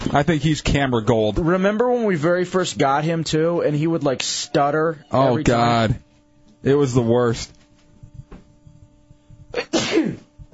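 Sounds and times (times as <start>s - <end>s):
speech: 0.1s - 6.0s, 6.6s - 7.6s
sneeze: 9.6s - 10.3s.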